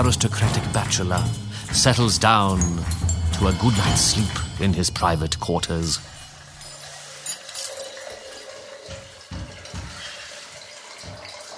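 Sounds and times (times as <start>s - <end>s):
speech: 0.0s - 6.2s
water glugs and splashes: 0.0s - 11.5s
water pouring into a hot water bottle: 5.9s - 11.5s.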